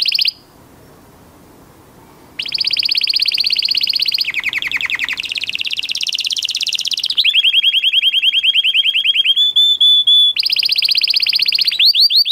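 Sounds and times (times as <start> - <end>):
canary singing trills: 0.0 - 0.5, 2.1 - 12.2.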